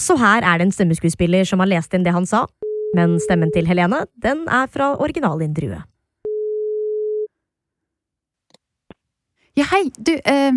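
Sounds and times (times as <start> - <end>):
speech: 0.0 - 5.9, 9.6 - 10.5
telephone ringing tone: 2.6 - 3.8, 6.2 - 7.3.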